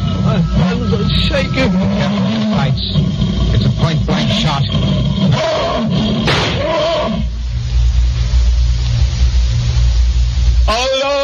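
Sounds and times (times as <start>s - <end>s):
lion roaring: 0.0s - 7.4s
steady low rumble: 0.0s - 11.2s
speech: 0.4s - 6.0s.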